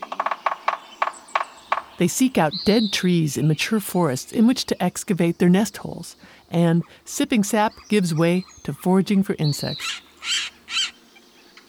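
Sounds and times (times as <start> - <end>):
Sapsucker drumming in a syncopated rhythm: 0.0 - 11.6
speech: 2.0 - 10.5.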